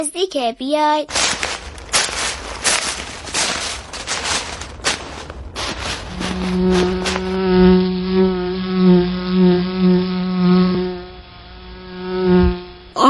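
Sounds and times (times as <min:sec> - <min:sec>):
speech: 0:00.0 - 0:01.4, 0:06.4 - 0:07.2
crackling rustling noise: 0:01.1 - 0:07.6
honeybees buzzing around their hive: 0:01.1 - 0:13.0.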